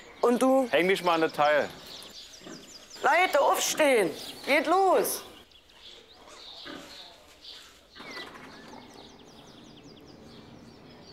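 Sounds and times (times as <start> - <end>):
speech: 0.2 - 1.8, 3.0 - 5.3
sow and piglets snuffling and grunting at an outdoor ramp: 1.5 - 4.2, 6.2 - 9.6.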